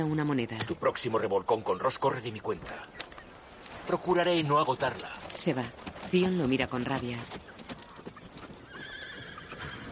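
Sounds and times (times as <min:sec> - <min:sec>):
speech: 0:00.0 - 0:03.1, 0:03.9 - 0:07.5
horse hooves clopping on hard ground: 0:01.9 - 0:09.9
horse whinnying: 0:08.6 - 0:09.9.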